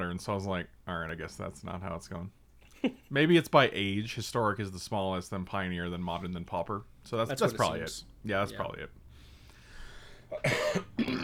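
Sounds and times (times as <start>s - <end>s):
speech: 0.2s - 9.0s, 10.3s - 10.9s
person coughing from drinking coffee: 10.3s - 11.2s.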